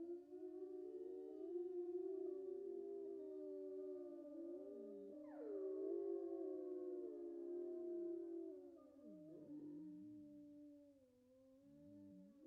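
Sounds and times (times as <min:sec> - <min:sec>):
wolf pack howling in chorus: 0:00.2 - 0:10.2.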